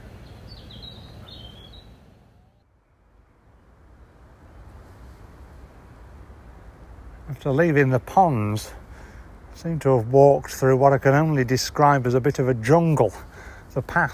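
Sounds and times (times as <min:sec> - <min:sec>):
high bird chirps: 0:00.0 - 0:02.6
speech: 0:07.3 - 0:08.8, 0:09.6 - 0:14.1.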